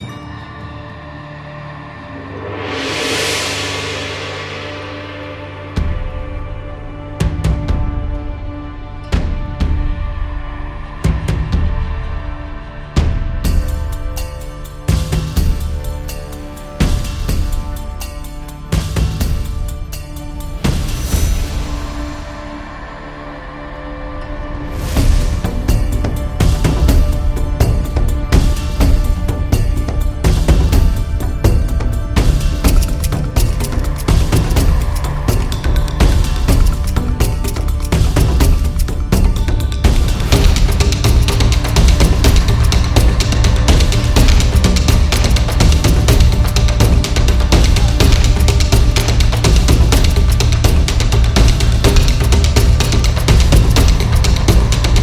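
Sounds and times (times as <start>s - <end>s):
Chinese percussion for Chinese New Year: 0.0s - 55.0s.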